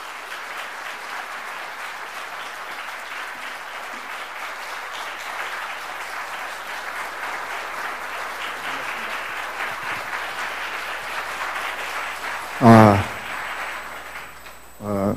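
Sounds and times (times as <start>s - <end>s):
enthusiastic audience applause: 0.0s - 14.8s
voice: 12.6s - 13.2s, 14.8s - 15.1s.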